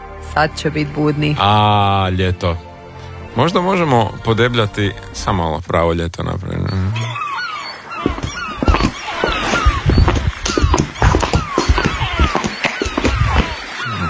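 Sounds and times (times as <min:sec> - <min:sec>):
speech: 0:00.4 - 0:02.7, 0:03.4 - 0:07.1
gull calling in descending honking cries: 0:06.7 - 0:14.0
clattering and scraping on a laminate floor: 0:08.0 - 0:13.7.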